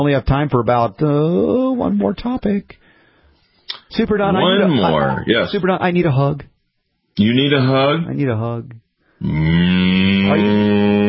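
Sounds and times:
speech: 0.0s - 2.9s, 3.9s - 6.5s, 7.2s - 11.0s
person imitating a cow mooing: 9.2s - 11.0s.

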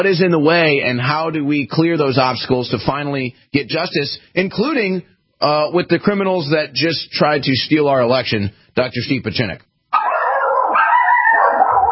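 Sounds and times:
speech: 0.0s - 9.7s
dogs barking and fighting: 9.9s - 11.9s
wavering whining howl of dogs in a fight: 10.0s - 11.9s.

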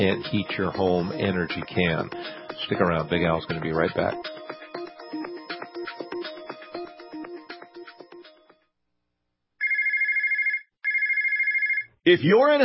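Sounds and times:
speech: 0.0s - 4.3s, 12.0s - 12.6s
melodic phone ringtone: 0.0s - 8.5s, 9.6s - 11.9s
trilling electronic telephone ringing: 9.6s - 11.9s.

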